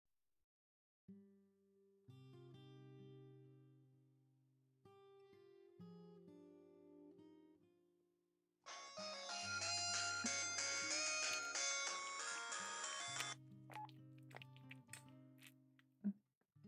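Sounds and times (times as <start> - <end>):
melodic phone ringtone: 8.7 - 13.4.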